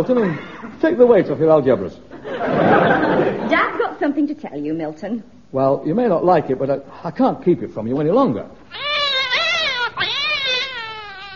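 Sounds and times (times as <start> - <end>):
speech: 0.0 - 8.9
laughter: 2.1 - 3.8
cat yowling: 8.7 - 11.3.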